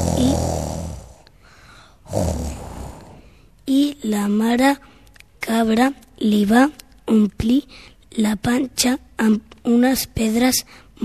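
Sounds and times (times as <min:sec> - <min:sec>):
wolf snoring sound effect: 0:00.0 - 0:01.3, 0:02.0 - 0:03.3
speech: 0:04.2 - 0:04.9, 0:05.6 - 0:11.0.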